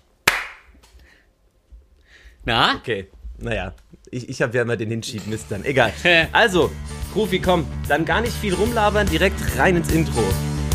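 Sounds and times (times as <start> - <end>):
single hand clap for audio sync: 0.2 - 0.9
speech: 2.4 - 10.5.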